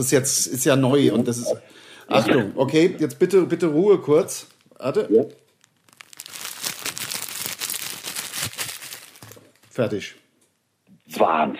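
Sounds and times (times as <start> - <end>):
speech: 0.0 - 5.4, 9.8 - 10.2, 11.1 - 11.5
person vocally imitating a plastic tissue packet crinkling: 4.1 - 10.0.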